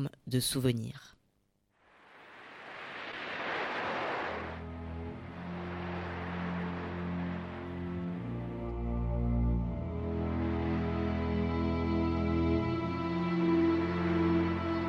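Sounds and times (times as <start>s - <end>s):
speech: 0.0s - 1.2s
ocean surf washing on the shore: 2.0s - 8.9s, 10.1s - 11.5s, 13.2s - 14.8s
sustained low musical tones: 4.6s - 14.8s.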